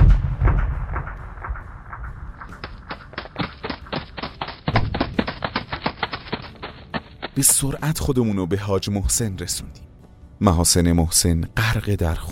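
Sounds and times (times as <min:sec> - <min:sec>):
mine explosion deep rumbling boom: 0:00.0 - 0:03.0
sharp cracking bursts: 0:00.0 - 0:07.7
speech: 0:07.4 - 0:12.3.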